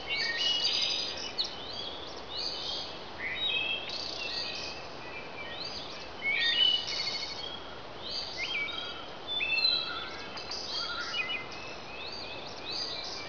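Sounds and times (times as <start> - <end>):
birds chirping and whistling: 0.0 - 13.2
steady background hiss: 0.0 - 13.2.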